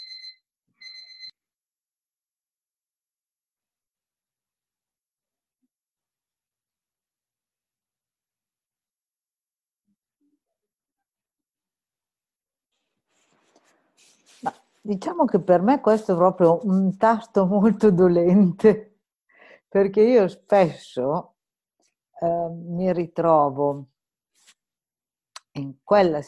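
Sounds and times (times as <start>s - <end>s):
alarm clock ringing with high-pitched electronic beeps: 0.0s - 1.3s
soft rustle: 12.7s - 15.2s, 24.3s - 24.6s
speech: 14.4s - 18.9s, 19.7s - 21.3s, 22.2s - 23.9s, 25.6s - 26.2s.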